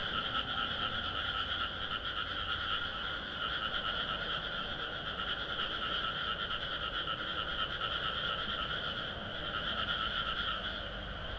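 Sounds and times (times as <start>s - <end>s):
chorus of frogs croaking and trilling in fields: 0.0s - 11.3s.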